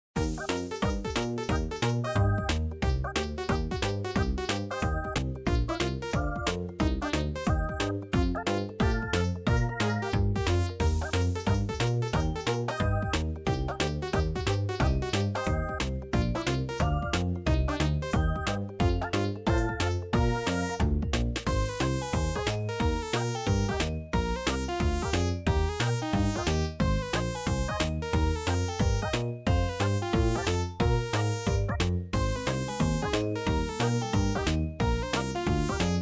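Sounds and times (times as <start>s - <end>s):
background music: 0.2s - 36.0s.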